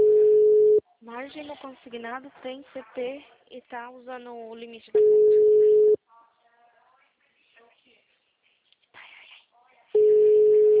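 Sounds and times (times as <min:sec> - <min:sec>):
steady loud tone from an unanswered phone call: 0:00.0 - 0:00.8, 0:05.0 - 0:06.0, 0:10.0 - 0:10.7
faint sounds: 0:00.0 - 0:10.7
speech: 0:01.4 - 0:05.4.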